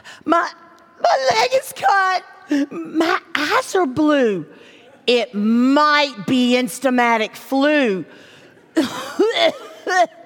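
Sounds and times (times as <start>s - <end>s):
speech: 0.2s - 10.2s
person coughing: 8.8s - 10.2s.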